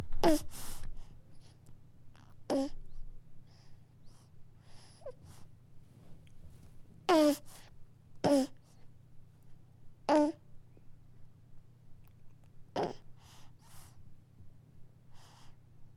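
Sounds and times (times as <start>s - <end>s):
baby pausing in breastfeeding: 0.0s - 0.8s, 2.2s - 3.0s, 7.1s - 8.6s, 10.1s - 10.4s, 12.7s - 13.1s.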